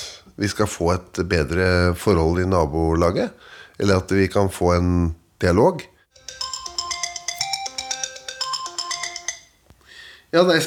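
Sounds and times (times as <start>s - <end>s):
speech: 0.4s - 5.9s, 10.3s - 10.6s
phone ringtone for an incoming call: 6.1s - 9.6s.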